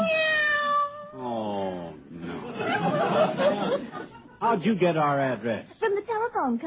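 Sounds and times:
cat meowing in long wavering cries: 0.0s - 1.2s
laughter: 2.2s - 4.7s
speech: 2.8s - 6.6s.

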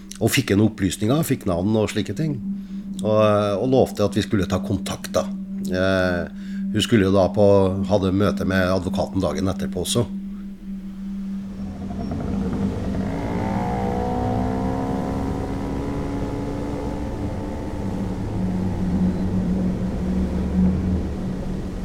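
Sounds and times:
speech: 0.2s - 10.2s
small moped engine droning and revving while ridden: 11.5s - 21.8s.

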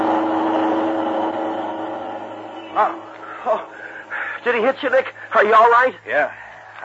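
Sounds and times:
car engine droning as the vehicle speeds up a street: 0.0s - 5.4s
speech: 2.8s - 3.7s, 4.4s - 6.4s.

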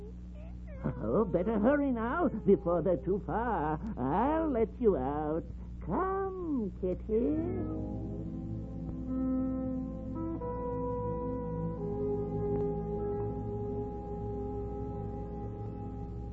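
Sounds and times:
kitten meowing: 0.4s - 2.5s
steady sustained tonal drone: 0.7s - 16.3s
speech: 0.8s - 8.1s.

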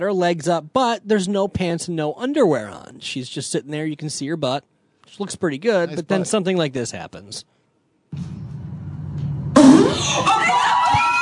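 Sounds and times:
speech: 0.0s - 8.4s
low rumble: 8.1s - 9.7s
girl farting: 9.5s - 10.2s.

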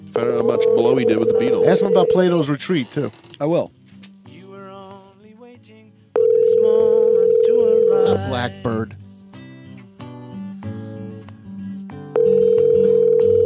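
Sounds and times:
music: 0.0s - 2.8s, 3.4s - 13.4s
telephone line ringing: 0.2s - 2.5s, 6.2s - 8.4s, 12.2s - 13.4s
speech: 0.2s - 3.8s, 8.3s - 9.0s.

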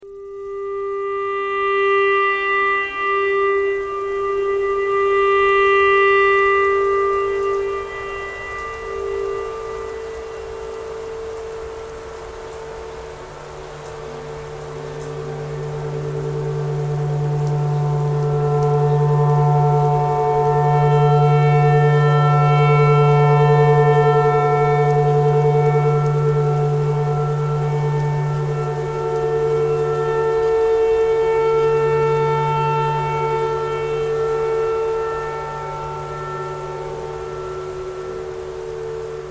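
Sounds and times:
clarinet: 0.0s - 39.2s
tornado siren: 0.0s - 39.2s.

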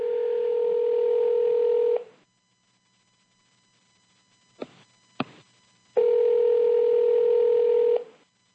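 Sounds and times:
flat telephone line tone: 0.0s - 2.1s, 6.0s - 8.2s.

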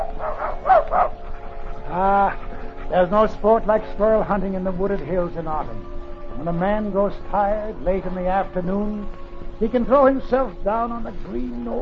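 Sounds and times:
dog barking: 0.0s - 2.6s
speech: 1.9s - 11.8s.

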